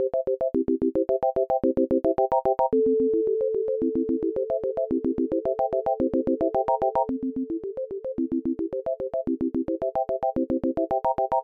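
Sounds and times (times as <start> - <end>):
440 Hz tone from a plug-in: 0.1 - 11.4.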